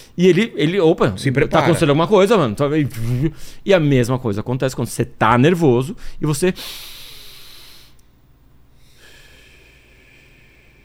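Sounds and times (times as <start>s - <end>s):
speech: 0.2s - 7.0s
slow deep calming breaths: 3.1s - 3.7s, 6.0s - 8.0s, 8.7s - 10.8s.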